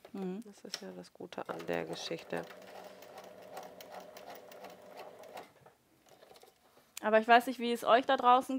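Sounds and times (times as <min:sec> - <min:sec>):
speech: 0:00.2 - 0:02.9, 0:07.0 - 0:08.5
sewing machine stitching: 0:01.5 - 0:05.5.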